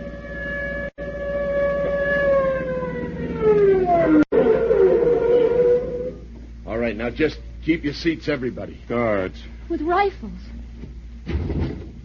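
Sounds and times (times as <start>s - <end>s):
police car siren wailing as the car passes: 0.0s - 6.3s
speech: 7.0s - 10.6s.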